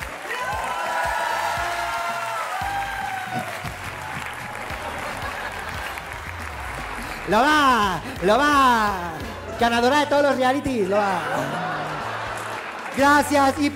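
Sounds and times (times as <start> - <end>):
whoops and cheers: 0.0 - 5.9
live audience applause: 0.0 - 13.7
laughter: 3.3 - 13.7
speech: 7.3 - 11.6, 13.0 - 13.7.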